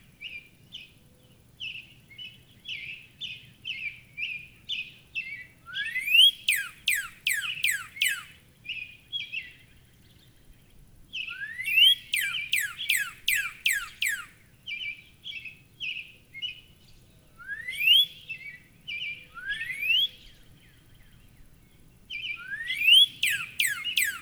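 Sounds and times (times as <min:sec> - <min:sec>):
Northern cardinal short chirping notes: 0:00.2 - 0:10.6, 0:11.2 - 0:24.2
Northern cardinal singing steep downslurred whistles: 0:05.7 - 0:08.3, 0:11.3 - 0:14.4, 0:17.4 - 0:18.6, 0:19.3 - 0:20.4, 0:22.3 - 0:24.2.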